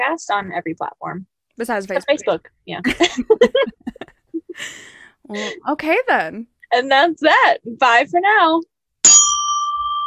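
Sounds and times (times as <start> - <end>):
speech: 0.0 - 8.7
laughter: 1.9 - 5.6
bicycle-style bell ringing: 9.0 - 10.0.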